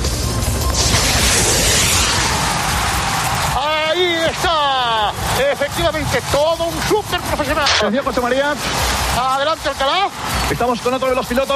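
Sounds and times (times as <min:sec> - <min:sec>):
harsh sustained roar of noise: 0:00.7 - 0:11.1
gunshot: 0:00.8 - 0:03.0
speech: 0:05.4 - 0:11.5.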